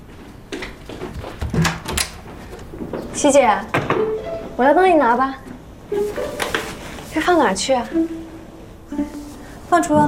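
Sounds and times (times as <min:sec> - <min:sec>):
front door latch and handle clunking and rattling: 0:01.4 - 0:02.7
speech: 0:03.2 - 0:03.8, 0:04.6 - 0:06.4, 0:07.1 - 0:08.2, 0:09.7 - 0:10.0.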